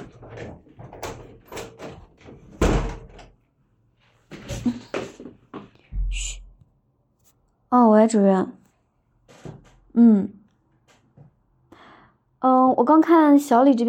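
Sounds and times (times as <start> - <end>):
door slamming shut: 2.5 - 3.2
speech: 7.7 - 8.6, 10.0 - 10.4, 12.4 - 13.8.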